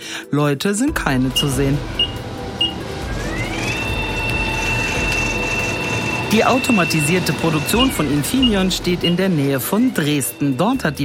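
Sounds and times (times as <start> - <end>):
speech: 0.2 - 2.1, 6.3 - 11.0
steady mechanical hum in an automated factory: 1.1 - 9.6
robot arm motor whine moving a box of computer chips in an automated factory: 1.2 - 9.2.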